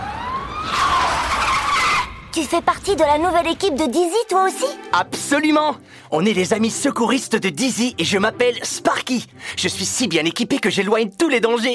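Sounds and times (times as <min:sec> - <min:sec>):
fire truck siren: 0:00.0 - 0:02.2
fire truck tires screeching skid: 0:00.0 - 0:02.3
speech: 0:02.4 - 0:11.7.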